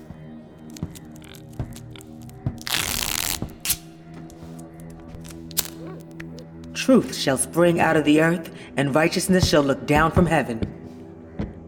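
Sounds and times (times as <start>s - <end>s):
clicks, scrapes and crinkles of duct tape pressed over a person's mouth: 0.6s - 6.4s
strip of duct tape ripped off the roll: 2.6s - 3.8s
speech: 6.8s - 10.7s.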